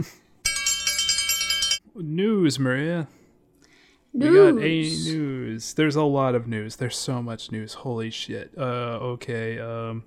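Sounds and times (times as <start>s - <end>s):
speech: 0.0s - 0.2s, 2.0s - 3.2s, 4.1s - 10.0s
news bell ringing in a rapid trill: 0.4s - 1.8s.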